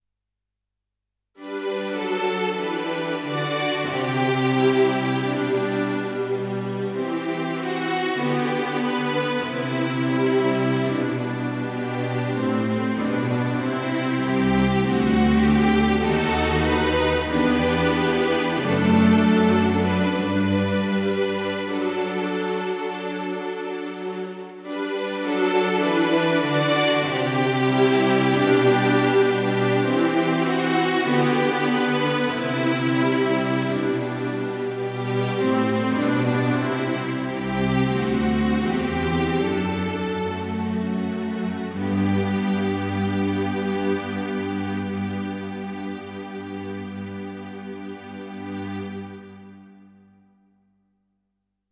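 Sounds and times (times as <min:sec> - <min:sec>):
slow strings on a synthesizer: 0:01.4 - 0:50.2.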